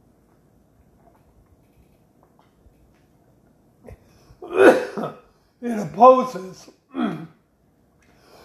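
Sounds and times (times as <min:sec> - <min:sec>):
person coughing: 0:04.4 - 0:05.2, 0:06.9 - 0:07.4
speech: 0:05.9 - 0:06.8
person clearing their throat: 0:06.9 - 0:07.4.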